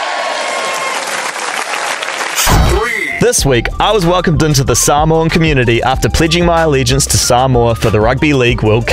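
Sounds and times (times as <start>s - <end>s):
crowd applauding: 0.0s - 3.3s
speech: 3.2s - 8.9s.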